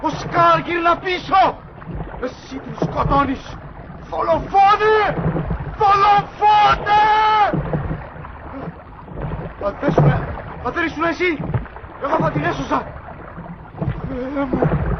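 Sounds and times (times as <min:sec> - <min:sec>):
speech: 0:00.0 - 0:01.6, 0:02.2 - 0:07.7, 0:09.6 - 0:13.0, 0:14.2 - 0:14.8
water churning and sloshing around a small sinking boat: 0:00.0 - 0:14.9
people shouting urgently: 0:05.8 - 0:07.6.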